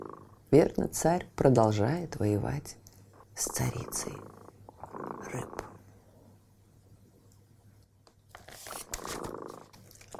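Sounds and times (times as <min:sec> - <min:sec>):
cat purring: 0:00.0 - 0:06.0, 0:09.0 - 0:10.1
speech: 0:00.5 - 0:02.8, 0:03.4 - 0:04.4, 0:05.2 - 0:05.6.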